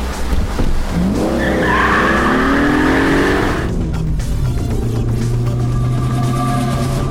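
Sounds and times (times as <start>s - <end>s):
garbage truck rumbling engine drone: 0.0s - 7.0s
garbage truck tire screech while skidding: 0.9s - 3.8s, 5.5s - 7.0s.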